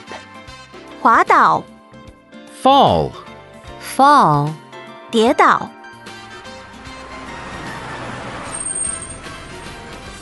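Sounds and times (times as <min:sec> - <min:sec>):
speech: 0:01.0 - 0:01.7, 0:02.6 - 0:03.2, 0:03.9 - 0:05.8
steady street traffic: 0:05.2 - 0:10.1
bus engine rumbling: 0:06.4 - 0:10.1
high hiss of bus air brakes: 0:08.4 - 0:09.6.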